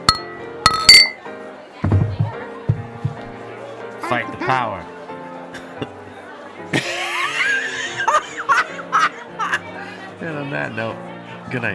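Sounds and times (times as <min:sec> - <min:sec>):
glasses of craft beer clinking in a toast: 0:00.0 - 0:01.2
speech: 0:04.1 - 0:04.9, 0:10.2 - 0:11.7
laughter: 0:05.5 - 0:10.1.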